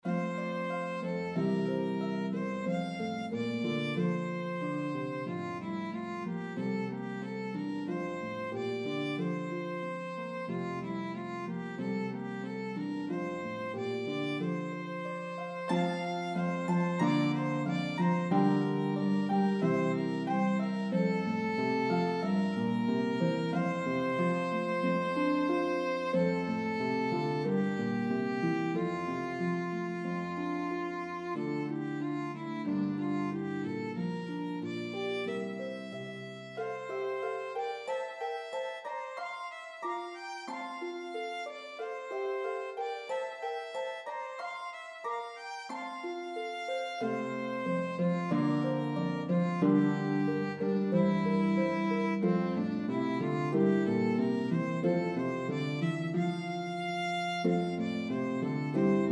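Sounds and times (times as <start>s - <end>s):
harp melody: 0.0s - 59.1s
violin: 0.0s - 59.1s.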